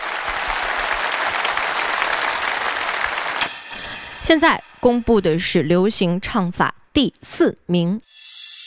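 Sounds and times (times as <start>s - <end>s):
large audience applauding at a singing competition: 0.0s - 3.6s
speech: 4.3s - 8.2s.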